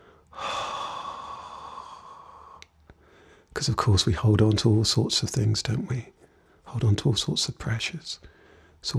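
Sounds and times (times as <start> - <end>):
deep breath: 0.0 - 3.6, 8.2 - 8.8
speech: 3.6 - 8.9.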